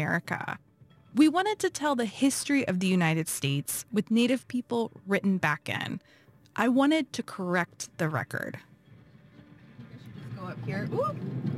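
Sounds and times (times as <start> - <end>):
speech: 0.0 - 8.7, 10.4 - 11.5
car engine and road rumble heard in the cabin: 8.7 - 11.5.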